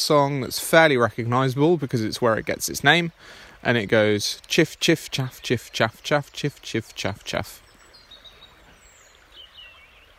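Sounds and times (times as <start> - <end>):
speech: 0.0 - 7.6
flowing water: 0.0 - 10.1
song thrush singing high whistled phrases: 0.0 - 10.1.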